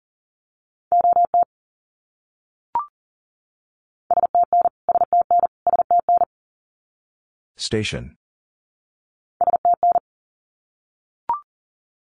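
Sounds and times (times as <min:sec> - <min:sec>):
Morse code beeps at 40 words per minute in a mid-pitched tone: 0:00.9 - 0:01.5, 0:04.1 - 0:06.3, 0:09.4 - 0:10.0
speech: 0:07.6 - 0:08.2.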